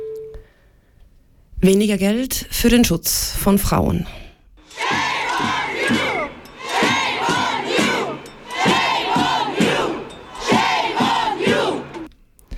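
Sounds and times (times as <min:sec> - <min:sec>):
speech: 0:01.6 - 0:04.2
large crowd of demonstrators chanting in unison at a protest: 0:04.7 - 0:12.1.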